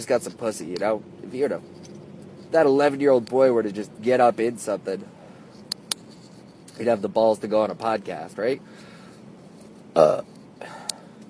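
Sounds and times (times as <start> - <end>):
speech: 0.0 - 1.9, 2.5 - 5.2, 6.8 - 8.9, 10.0 - 10.3
burp: 10.0 - 10.3
breathy sound: 10.0 - 11.2.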